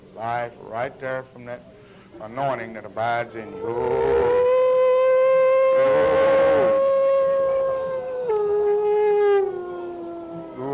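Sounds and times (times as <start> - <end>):
speech: 0.2 - 4.5, 5.8 - 6.3
dog howling: 3.4 - 10.7.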